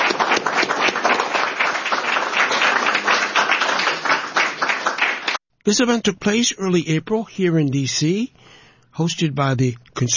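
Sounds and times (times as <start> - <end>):
audience applause: 0.0 - 5.4
speech: 5.6 - 8.4, 9.0 - 10.1.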